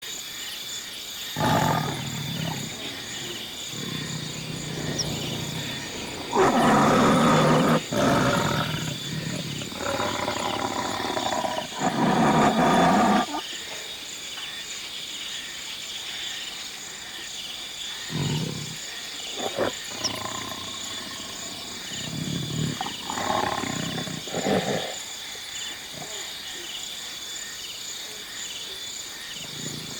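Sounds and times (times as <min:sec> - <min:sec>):
African animals ambience: 0:01.1 - 0:13.5, 0:17.1 - 0:29.9.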